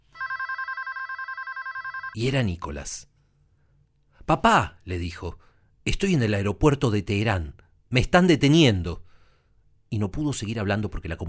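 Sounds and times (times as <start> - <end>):
telephone ringing with a rapid warbling trill: 0.0 - 2.2
speech: 2.1 - 3.1, 4.3 - 9.1, 9.9 - 11.2.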